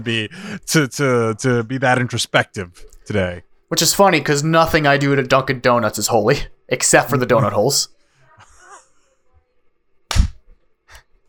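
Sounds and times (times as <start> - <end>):
speech: 0.0 - 8.0
hands clapping: 10.1 - 11.2.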